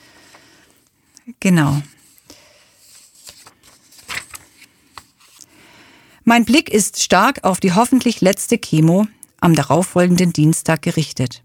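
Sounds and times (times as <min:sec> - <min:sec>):
speech: 0:01.3 - 0:02.0, 0:06.3 - 0:11.4
paper pages being turned: 0:02.0 - 0:05.5.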